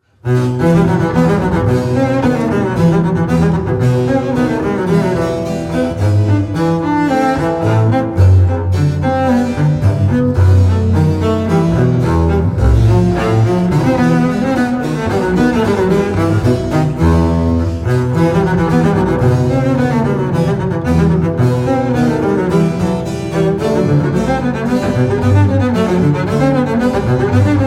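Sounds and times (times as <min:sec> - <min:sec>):
sonata: 0:00.1 - 0:27.6.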